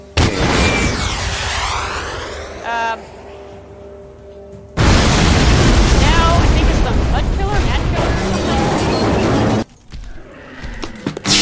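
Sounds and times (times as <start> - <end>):
synthetic blasts and booms of a security tank destroyed in a video game: 0.2 - 2.7, 4.8 - 9.6.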